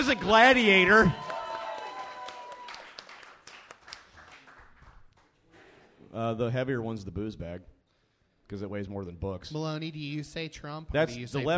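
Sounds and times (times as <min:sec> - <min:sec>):
speech: 0:00.0 - 0:01.2, 0:06.1 - 0:07.7, 0:08.5 - 0:11.5
audience crowd clapping: 0:00.0 - 0:05.5.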